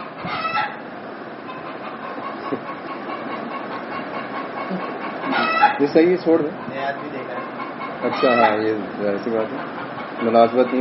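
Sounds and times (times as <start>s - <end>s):
rooster crowing: 0.2s - 0.8s, 5.3s - 5.9s, 8.1s - 8.7s
speech: 4.7s - 7.2s, 8.0s - 10.7s.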